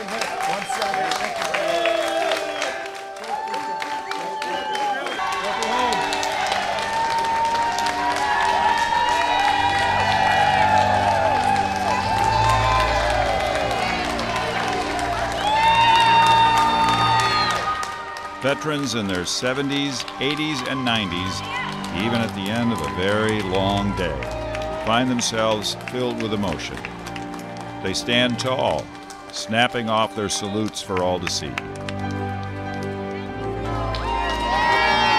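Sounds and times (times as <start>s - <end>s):
large crowd of family, friends and Navy cadets clapping in airport terminal: 0.0s - 35.1s
speech: 18.6s - 27.0s, 27.8s - 31.8s.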